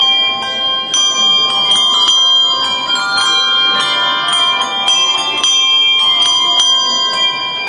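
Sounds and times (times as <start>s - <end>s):
bell tones: 0.0s - 7.6s.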